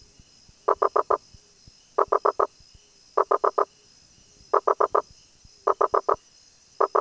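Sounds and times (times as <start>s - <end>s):
Rosenberg's gladiator frog Boana rosenbergi repeating clusters of quick tonal knocks: 0.7s - 1.2s, 3.2s - 3.7s, 4.6s - 5.0s, 5.7s - 6.2s, 6.8s - 7.0s.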